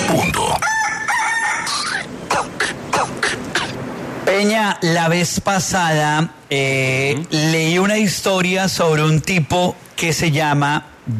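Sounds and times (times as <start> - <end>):
rooster clucking calls: 0.0 - 3.8
rooster crowing: 0.4 - 2.2
speech: 4.4 - 11.1.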